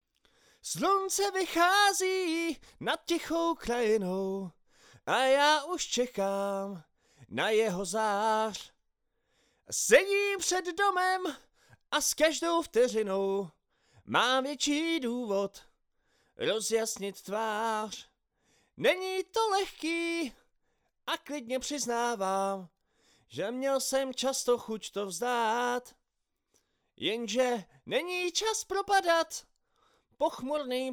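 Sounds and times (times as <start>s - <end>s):
solo vocals recorded with AKG 440 microphone: 0.6s - 8.8s, 9.7s - 15.7s, 16.4s - 18.1s, 18.8s - 20.4s, 21.1s - 22.7s, 23.3s - 26.0s, 27.0s - 29.5s, 30.2s - 30.9s.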